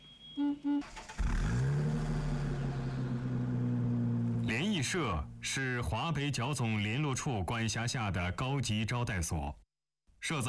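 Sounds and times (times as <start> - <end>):
short electronic beeps: 0.0 - 1.1
speech: 0.4 - 1.0, 4.8 - 9.6, 10.2 - 10.4
car engine starting and running: 0.8 - 5.7.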